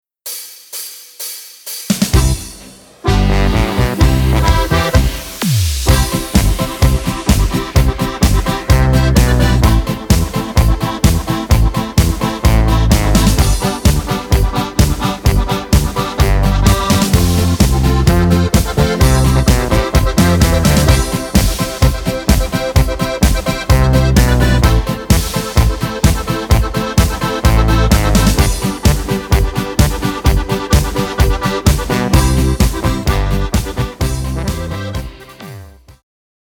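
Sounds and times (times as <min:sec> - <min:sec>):
musical notes G C F B: 0:02.1 - 0:35.8.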